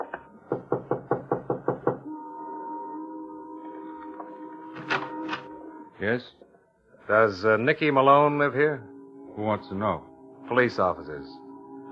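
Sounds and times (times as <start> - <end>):
firm knocks on the door of a white single-frame house: 0.1 - 2.0
speech: 6.0 - 6.4, 7.1 - 11.4.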